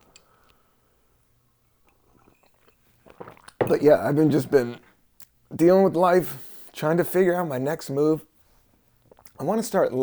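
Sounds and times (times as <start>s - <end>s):
person sipping a hot drink from a mug: 1.8s - 4.9s
speech: 3.7s - 4.9s, 5.5s - 8.3s, 9.4s - 10.0s.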